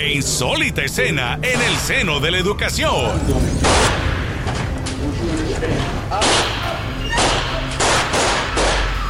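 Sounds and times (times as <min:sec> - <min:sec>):
speech: 0:00.0 - 0:06.6
sharp gunshots in a school board meeting: 0:03.6 - 0:04.4, 0:06.2 - 0:09.0.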